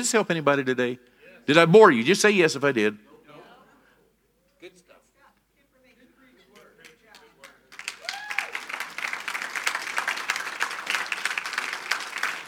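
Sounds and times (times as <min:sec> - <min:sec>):
speech: 0:00.0 - 0:03.1
audience clapping: 0:06.5 - 0:12.4.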